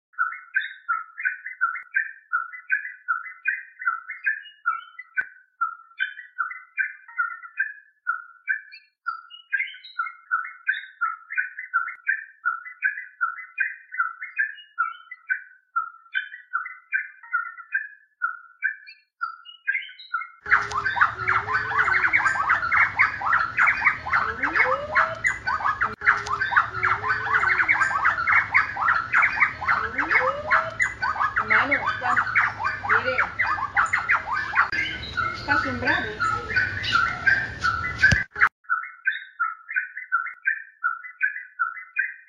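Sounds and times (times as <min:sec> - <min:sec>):
garrincha dos lhanos singing: 0:00.1 - 0:42.2.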